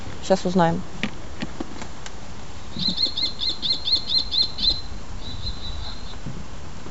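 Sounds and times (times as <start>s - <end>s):
quiet outdoor noise: 0.0s - 6.8s
speech: 0.3s - 1.0s, 2.8s - 3.1s
kestrel giving sharp high-pitched kee notes: 2.7s - 6.3s.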